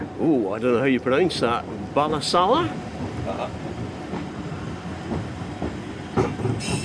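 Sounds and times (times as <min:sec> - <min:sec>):
rhythmic clacking of train wheels on rails: 0:00.0 - 0:06.8
train rumbling along rails: 0:00.0 - 0:06.8
speech: 0:00.2 - 0:03.7
faint train wheel squeal: 0:06.3 - 0:06.8.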